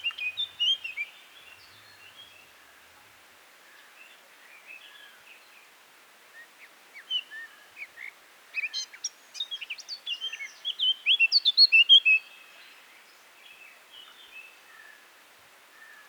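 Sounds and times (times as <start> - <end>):
Eurasian blackcap song: 0.0 - 2.4, 7.0 - 12.6.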